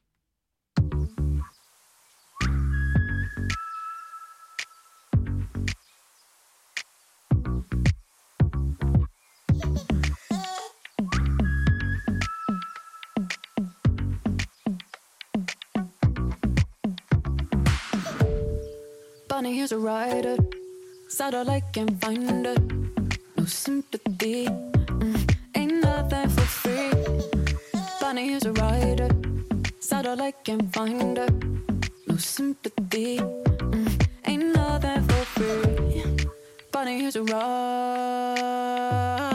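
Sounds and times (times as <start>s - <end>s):
punchy stop-start pop beat with deep bass thumps: 0.8s - 1.1s, 5.2s - 5.8s, 7.3s - 10.2s, 13.2s - 18.7s, 20.4s - 20.6s, 21.8s - 27.6s, 28.4s - 30.0s, 30.6s - 32.0s, 32.8s - 36.3s, 38.4s - 39.3s
whistled melodic hook in a pop song: 2.4s - 5.1s, 11.0s - 13.9s
speech: 19.4s - 22.8s, 23.5s - 24.7s, 29.9s - 33.5s, 36.8s - 39.2s.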